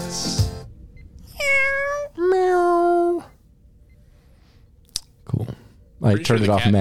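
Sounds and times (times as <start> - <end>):
cat meowing: 1.3 - 3.3
speech: 6.0 - 6.7.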